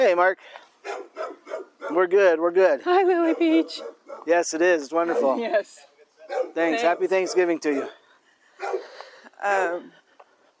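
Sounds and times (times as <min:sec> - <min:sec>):
speech: 0:00.0 - 0:01.3, 0:01.9 - 0:08.0, 0:08.6 - 0:10.0
dog barking: 0:00.8 - 0:02.1, 0:03.2 - 0:04.4, 0:05.0 - 0:05.4, 0:06.2 - 0:09.0.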